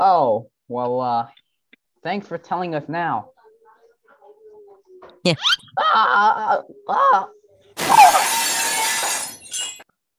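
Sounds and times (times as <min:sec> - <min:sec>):
speech: 0:00.0 - 0:01.4, 0:02.0 - 0:03.3, 0:05.2 - 0:08.4
falling window glass shards tinkling: 0:07.8 - 0:09.9
window pane shattering: 0:07.8 - 0:09.9.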